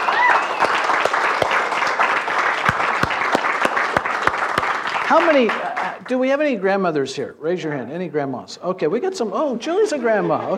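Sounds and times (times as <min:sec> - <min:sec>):
audience applauding warmly for mothers: 0:00.0 - 0:06.2
speech: 0:05.1 - 0:10.5.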